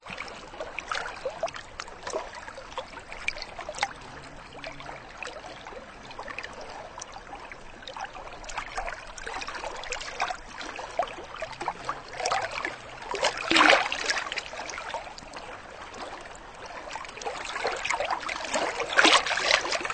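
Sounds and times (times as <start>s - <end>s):
water in Sweden: 0.0s - 19.9s.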